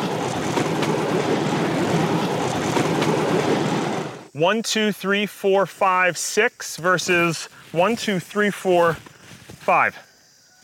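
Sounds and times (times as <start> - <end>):
rhythmic clicks and rattles of bamboo railway train on tracks: 0.0 - 3.5
bamboo railway train rumbling on tracks: 0.0 - 4.4
speech: 4.4 - 10.0.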